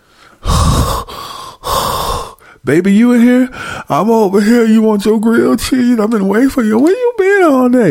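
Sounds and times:
heavy breathing: 0:00.0 - 0:02.6, 0:03.5 - 0:03.9
speech: 0:02.6 - 0:07.9.

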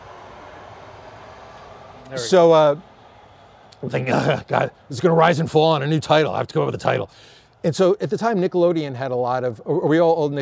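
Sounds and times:
train rolling past at range: 0:00.0 - 0:05.8
speech: 0:02.1 - 0:02.9, 0:03.8 - 0:10.4.

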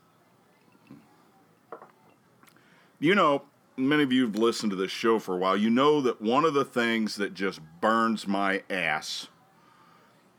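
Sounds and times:
glass clinks and knocks while taking a drink: 0:01.7 - 0:02.1
speech: 0:03.0 - 0:09.3.

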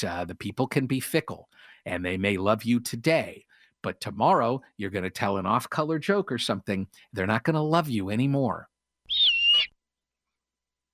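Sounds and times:
speech: 0:00.0 - 0:09.7
snowy owl whistling call: 0:09.1 - 0:09.8.

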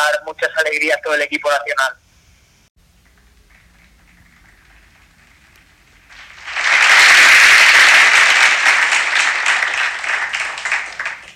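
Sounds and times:
speech: 0:00.1 - 0:02.0
crowd applauding a bronze medallist in uphill vertical: 0:03.1 - 0:11.3.

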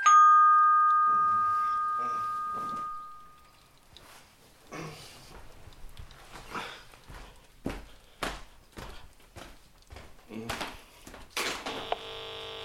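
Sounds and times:
doorbell chiming: 0:00.0 - 0:03.5
footsteps: 0:03.9 - 0:11.9.

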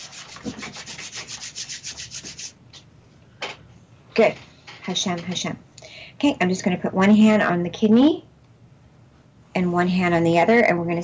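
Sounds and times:
palms rubbing briskly together in a healing prayer session: 0:00.0 - 0:02.6
speech: 0:04.2 - 0:08.3, 0:09.6 - 0:11.0.

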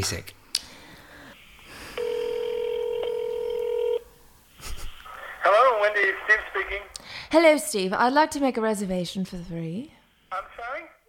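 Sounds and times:
speech: 0:00.0 - 0:00.4, 0:06.0 - 0:10.9
steady electronic telephone dialing tone: 0:02.0 - 0:04.0.

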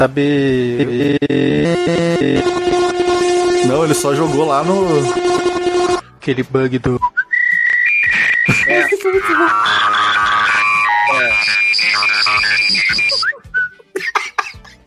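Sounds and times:
speech: 0:00.0 - 0:02.9, 0:03.7 - 0:05.5, 0:06.3 - 0:07.0
mobile phone default whistle ringtone: 0:07.0 - 0:13.8
laughter: 0:12.8 - 0:14.8.

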